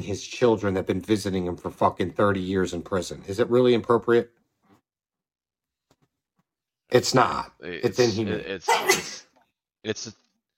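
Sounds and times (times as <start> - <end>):
speech: 0.0 - 4.4, 6.9 - 9.2, 9.8 - 10.2
sneeze: 8.7 - 9.3.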